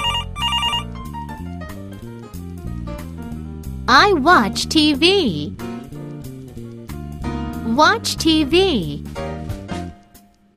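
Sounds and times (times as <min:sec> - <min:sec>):
warbling electronic telephone ring: 0:00.0 - 0:00.9
bouncy musical backing: 0:00.0 - 0:01.8, 0:03.9 - 0:10.0
speech: 0:03.9 - 0:05.6, 0:07.8 - 0:09.3.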